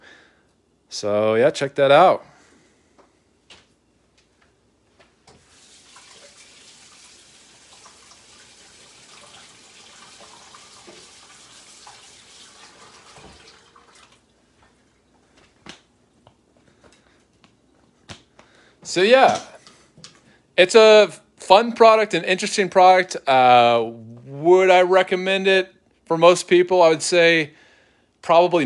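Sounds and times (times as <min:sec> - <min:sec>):
speech: 0:01.0 - 0:02.3, 0:19.0 - 0:19.5, 0:20.6 - 0:27.6, 0:28.2 - 0:28.6
faucet running while a sticky roller is rinsed: 0:05.3 - 0:14.3.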